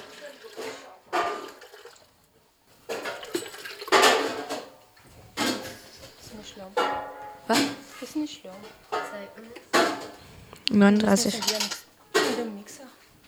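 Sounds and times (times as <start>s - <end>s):
three liters of water pouring into a container: 0.0s - 6.2s
dishes or utensils clinking: 2.8s - 13.2s
speech: 6.6s - 13.0s.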